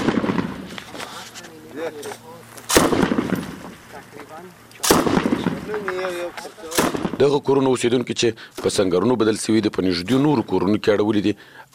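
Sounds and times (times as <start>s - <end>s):
hunting rifle gunshots at a security post on a main road: 0.0s - 0.8s, 2.7s - 4.0s, 4.8s - 6.0s, 6.6s - 7.3s
speech: 1.8s - 2.3s, 4.0s - 11.7s.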